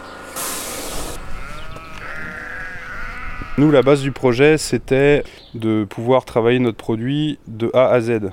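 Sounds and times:
broad hissing noise: 0:00.0 - 0:02.1
large white hornless Lacaune ewes bleating: 0:00.9 - 0:04.5
speech: 0:03.6 - 0:08.3.

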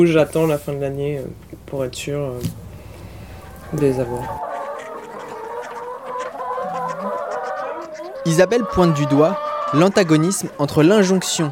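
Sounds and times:
speech: 0:00.0 - 0:02.6, 0:03.7 - 0:04.5, 0:08.2 - 0:11.5
flock of hens clucking on an organic farm: 0:00.0 - 0:11.5.

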